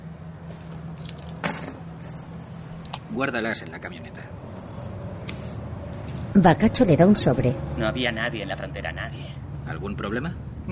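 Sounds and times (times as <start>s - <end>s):
keys jingling as they are handed over in a bar: 0.5s - 3.0s, 4.1s - 5.0s
speech: 3.1s - 4.7s, 6.4s - 10.7s.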